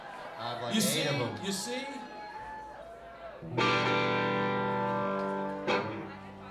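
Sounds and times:
speech: 0.4 - 2.1, 3.4 - 3.8
Ibanez Jet King 1 electric guitar with split humbucker pickup played through distortion: 3.4 - 6.4.

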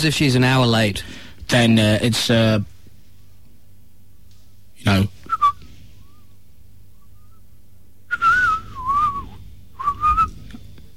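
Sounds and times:
speech: 0.0 - 2.7, 4.8 - 5.2
faint low hum: 0.0 - 10.9
person whistling in imitation of birdsong: 5.2 - 6.3, 7.0 - 7.5, 8.1 - 10.4.

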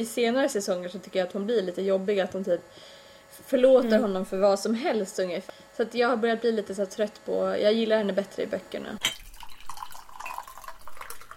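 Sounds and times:
speech: 0.0 - 9.2
tea pouring into a cup: 9.0 - 11.3.

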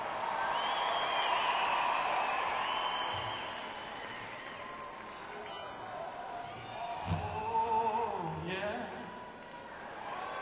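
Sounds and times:
crowd cheering and clapping: 0.0 - 10.4
shouts and whistles: 0.4 - 4.6.

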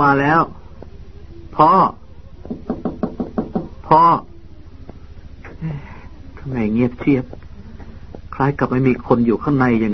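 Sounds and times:
speech: 0.0 - 0.6, 1.6 - 2.6, 3.9 - 4.3, 5.6 - 7.4, 8.4 - 9.9
vocal imitation of knocking on a door: 2.4 - 3.8.

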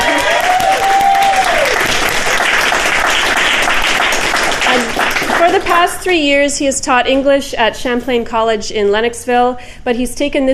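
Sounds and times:
audience applause: 0.0 - 5.9
speech: 5.8 - 10.5.

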